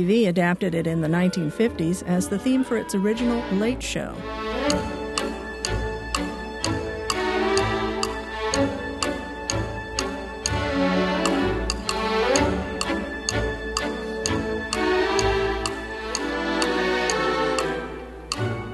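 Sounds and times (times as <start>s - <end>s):
speech: 0.0s - 5.0s
lively orchestral piece with strings and winds: 0.1s - 18.7s
crisp woodblock ticking: 4.6s - 18.7s.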